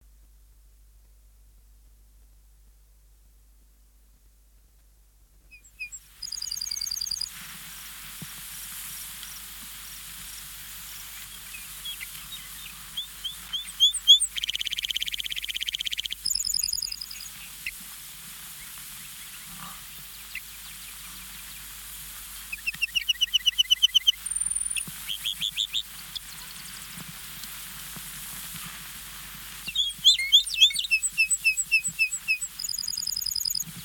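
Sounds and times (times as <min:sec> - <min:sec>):
lark bunting and songbirds singing: 0:05.5 - 0:07.3, 0:09.0 - 0:27.5, 0:29.5 - 0:33.8.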